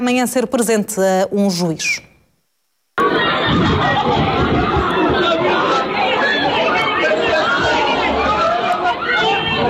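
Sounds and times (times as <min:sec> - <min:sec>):
speech: 0:00.0 - 0:02.1
dense outdoor crowd chatter and shouting: 0:03.0 - 0:09.6.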